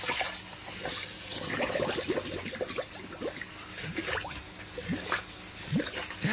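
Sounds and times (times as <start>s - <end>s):
gurgling and bubbling of people going underwater in a swimming pool: 0.0s - 6.3s
rising bubble pops in a swimming pool: 1.3s - 6.3s.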